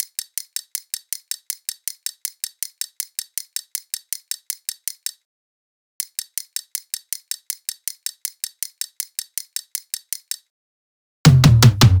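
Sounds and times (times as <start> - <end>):
hi-hat drum loop at 160: 11.3 - 11.9.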